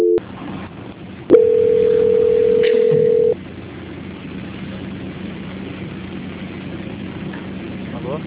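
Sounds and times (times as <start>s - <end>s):
telephone line tone during call transfer: 0.0s - 0.2s, 1.3s - 3.4s.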